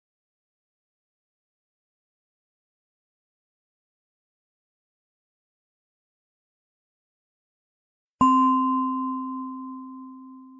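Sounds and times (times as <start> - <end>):
meditation bell struck to end a meditation session: 8.2 - 10.5.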